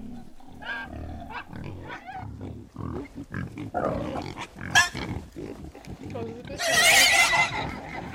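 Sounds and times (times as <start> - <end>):
piglets squealing and screaming while being killed: 0.0 - 2.2, 6.5 - 8.1.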